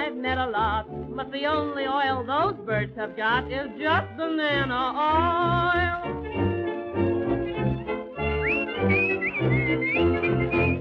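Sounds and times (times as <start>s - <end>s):
full instrumental backing music: 0.0s - 10.7s
speech: 0.2s - 6.2s
woman whistling a bright gliding tune: 8.3s - 10.7s.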